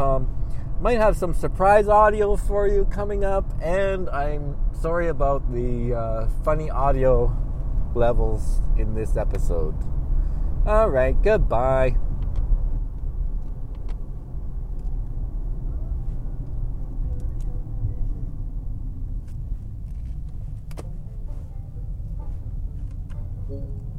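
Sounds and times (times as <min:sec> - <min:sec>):
car engine rumble while driving: 0:00.0 - 0:23.9
road noise: 0:00.0 - 0:23.9
speech: 0:00.2 - 0:09.9, 0:10.6 - 0:12.1.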